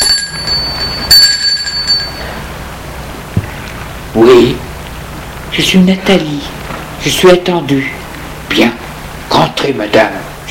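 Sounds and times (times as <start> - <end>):
bell ringing at the front gate of a house: 0.0 - 2.6
speech: 5.6 - 8.8, 9.4 - 10.3.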